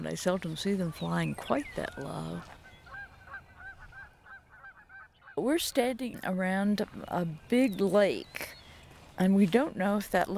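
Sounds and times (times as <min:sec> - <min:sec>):
speech: 0:00.0 - 0:02.6, 0:05.4 - 0:08.6, 0:09.2 - 0:10.3
teal calling: 0:00.8 - 0:05.4.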